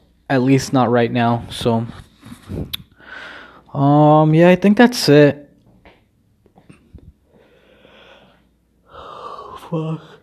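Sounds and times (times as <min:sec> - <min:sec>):
speech: 0:00.3 - 0:05.4, 0:09.7 - 0:10.1
drawn-out breathy yawn: 0:08.9 - 0:10.2.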